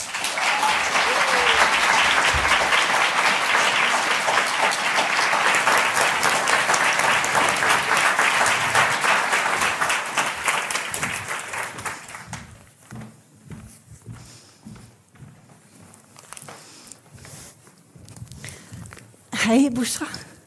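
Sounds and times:
audience applause: 0:00.0 - 0:12.4
speech: 0:19.6 - 0:20.2.

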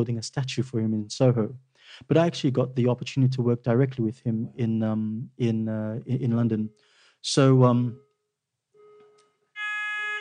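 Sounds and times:
speech: 0:00.0 - 0:08.0
building fire alarm electronic tone and harsh blare: 0:08.8 - 0:10.1.

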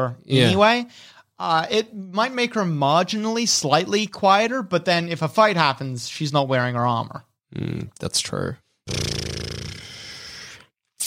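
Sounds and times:
speech: 0:00.0 - 0:09.8
orc snoring sound effect: 0:08.9 - 0:10.7.

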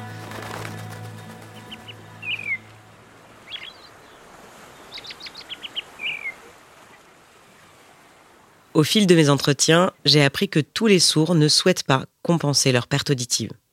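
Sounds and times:
steady low outdoor rumble: 0:00.0 - 0:04.5
seagull calls: 0:00.5 - 0:02.7, 0:03.4 - 0:06.5
speech: 0:08.8 - 0:13.6.

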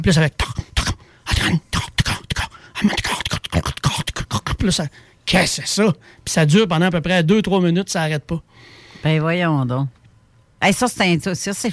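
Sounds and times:
speech: 0:00.0 - 0:00.5, 0:01.4 - 0:01.7, 0:02.8 - 0:03.7, 0:04.6 - 0:10.0, 0:10.6 - 0:11.7
voice imitating tongue clicks against the palate: 0:00.4 - 0:04.7.

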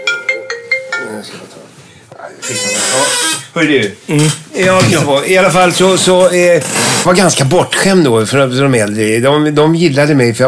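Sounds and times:
mobile phone ringtone of bright melodic electronic notes: 0:00.0 - 0:01.3
speech: 0:01.2 - 0:10.4.

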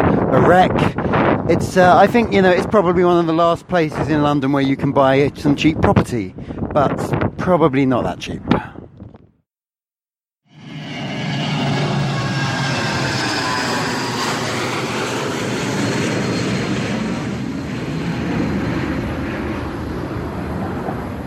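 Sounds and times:
jet airplane roaring overhead: 0:00.0 - 0:04.0, 0:10.5 - 0:21.2
speech: 0:00.3 - 0:08.6.

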